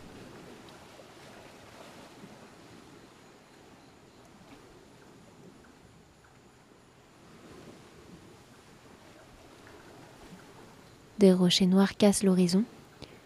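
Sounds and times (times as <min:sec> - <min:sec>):
waves breaking on a sandy beach: 0:00.0 - 0:11.2
speech: 0:11.2 - 0:12.8.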